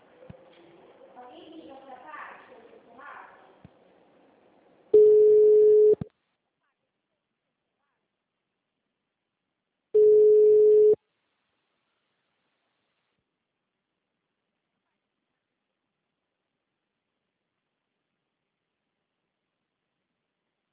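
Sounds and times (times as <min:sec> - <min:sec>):
ringback tone of an outgoing phone call: 0:05.0 - 0:06.0, 0:10.0 - 0:11.0.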